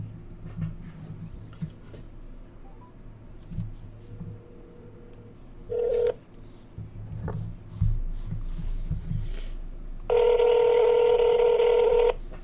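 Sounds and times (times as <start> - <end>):
low hum: 0.0 - 12.4
steady electronic tone as a call is placed: 4.1 - 6.1
telephone dialing tones: 5.7 - 6.2, 10.1 - 12.2.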